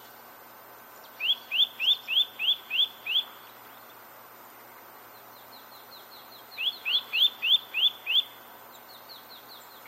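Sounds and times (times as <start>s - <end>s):
Eurasian nuthatch Sitta europaea calling in clear rising whistled notes: 1.2s - 3.4s, 6.6s - 8.4s.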